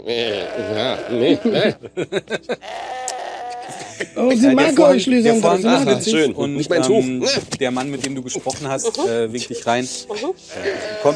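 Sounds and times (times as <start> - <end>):
speech: 0.0 - 2.9, 3.7 - 11.1
noise: 0.0 - 11.1
pet house goat bleating: 0.2 - 1.8, 2.6 - 3.8, 10.5 - 11.1
laughter: 0.6 - 2.9, 3.5 - 6.2, 8.7 - 11.1.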